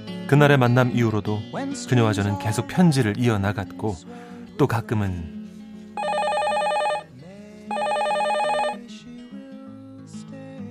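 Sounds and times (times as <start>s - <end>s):
soft music: 0.0s - 10.6s
speech: 0.3s - 5.4s
telephone ringing: 6.0s - 7.1s, 7.7s - 8.9s.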